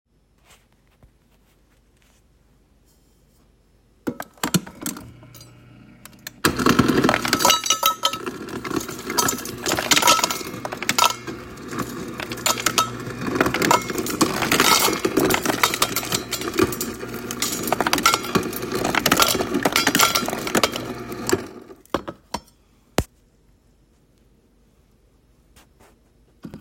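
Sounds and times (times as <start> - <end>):
ice machine: 4.1 - 21.9.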